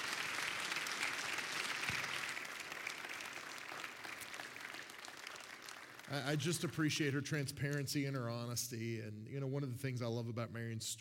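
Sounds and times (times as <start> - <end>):
audience applause: 0.0 - 6.7
speech: 6.1 - 10.9.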